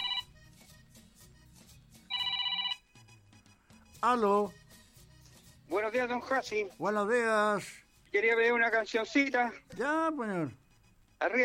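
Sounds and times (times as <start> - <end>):
telephone ringing with a shrill trilling electronic bell: 0.0 - 0.4, 2.1 - 3.0
speech: 4.0 - 4.6, 5.7 - 10.6, 11.2 - 11.4.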